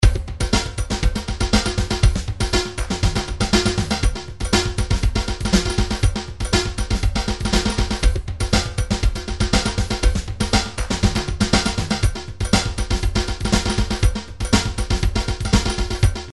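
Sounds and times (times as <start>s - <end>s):
hip hop MIDI drum grooves: 0.0s - 16.3s.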